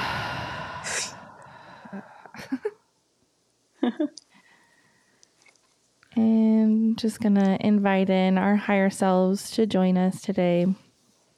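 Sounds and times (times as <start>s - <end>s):
deep breath held then exhaled during a guided breathing exercise: 0.0s - 2.4s
speech: 3.8s - 4.2s, 7.0s - 10.8s.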